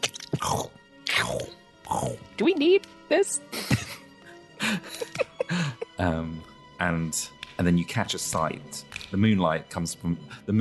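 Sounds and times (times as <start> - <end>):
wet crunching and tearing flesh: 0.0 - 0.6
speech: 2.4 - 3.6, 6.0 - 10.5
laughter: 3.5 - 4.0, 4.6 - 6.4.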